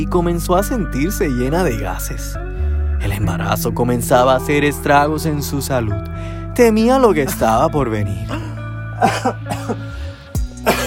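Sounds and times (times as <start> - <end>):
speech: 0.0 - 9.8
pregnant woman coughing harshly: 9.0 - 9.8, 10.6 - 10.8
throat clearing: 9.0 - 9.8, 10.6 - 10.8.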